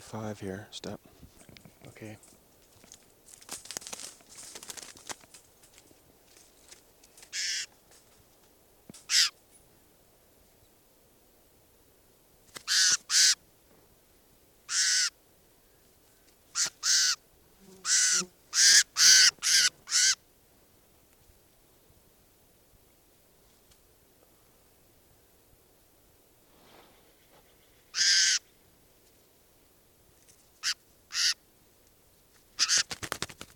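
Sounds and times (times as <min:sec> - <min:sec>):
speech: 0:00.1 - 0:01.3, 0:01.9 - 0:02.4
faint rustling of handling a bird: 0:01.1 - 0:08.6
bird cawing while being handled: 0:07.3 - 0:07.7, 0:09.1 - 0:09.4, 0:12.6 - 0:13.4, 0:14.7 - 0:15.2, 0:16.1 - 0:17.2, 0:17.8 - 0:20.2, 0:27.4 - 0:28.6, 0:30.6 - 0:31.4, 0:32.6 - 0:33.0.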